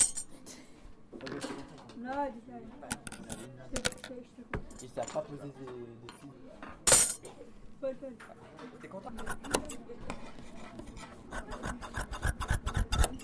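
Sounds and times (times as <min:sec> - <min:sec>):
speech: 0:01.2 - 0:12.3
scissors cutting fabric: 0:11.3 - 0:13.2.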